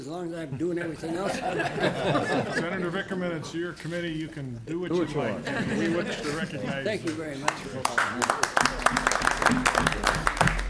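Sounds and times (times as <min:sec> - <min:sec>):
speech: 0:00.0 - 0:10.4
laughter: 0:00.5 - 0:03.7, 0:05.0 - 0:07.1
small group of committee members clapping: 0:07.0 - 0:10.6.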